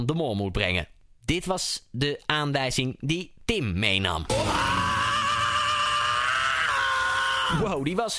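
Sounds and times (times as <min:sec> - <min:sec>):
speech: 0:00.0 - 0:04.8, 0:07.5 - 0:08.1
singer's scream from a rock song: 0:04.3 - 0:07.8.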